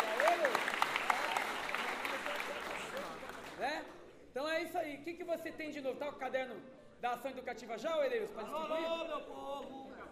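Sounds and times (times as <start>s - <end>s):
crowd clapping for a sponsor at a samba gathering: 0.0s - 3.7s
speech: 4.6s - 10.1s.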